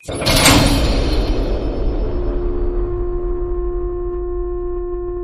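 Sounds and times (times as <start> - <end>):
gate hit closed: 0.0 - 5.1.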